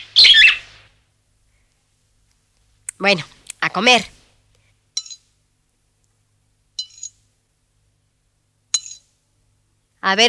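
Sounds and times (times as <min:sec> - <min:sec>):
birds chirping in a tree: 0:00.0 - 0:00.7
speech: 0:03.0 - 0:04.2, 0:10.1 - 0:10.2.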